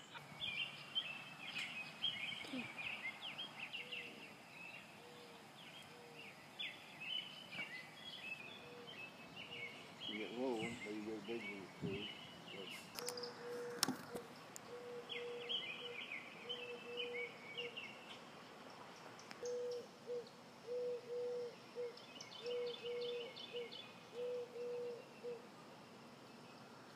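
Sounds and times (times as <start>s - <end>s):
faint background hiss: 0.0s - 26.9s
dove cooing: 3.7s - 6.4s, 8.5s - 17.8s, 19.4s - 25.5s.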